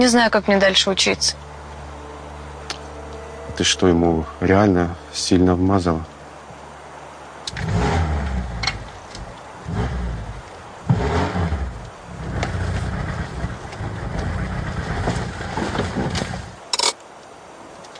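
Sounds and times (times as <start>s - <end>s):
speech: 0.0s - 1.5s, 3.6s - 6.1s
blue Moskvich car engine rumbling and revving: 7.4s - 16.6s.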